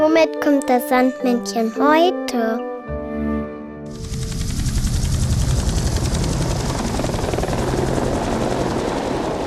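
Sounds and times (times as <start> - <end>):
speech: 0.1 - 2.7
helicopter rotor thumping with engine roaring: 3.9 - 9.4.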